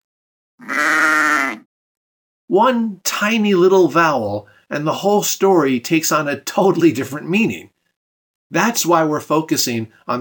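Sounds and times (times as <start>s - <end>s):
single sheep bleating: 0.6s - 1.6s
speech: 2.5s - 7.7s, 8.5s - 10.2s.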